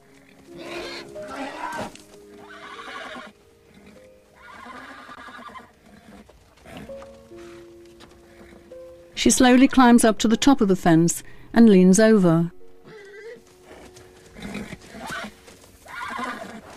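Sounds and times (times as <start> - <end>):
hooves clopping on ground: 0.0 - 9.8, 12.8 - 16.7
horse whinnying at a corral fence: 0.5 - 6.9, 12.8 - 16.7
speech: 9.2 - 12.6.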